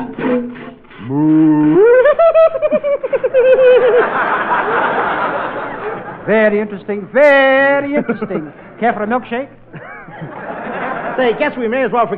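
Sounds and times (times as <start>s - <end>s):
speech: 0.0s - 1.5s, 6.3s - 9.7s, 11.2s - 12.1s
voice imitating a cow mooing while being milked: 0.1s - 1.8s
audience laughter: 1.8s - 6.3s, 7.9s - 8.8s, 9.7s - 11.6s.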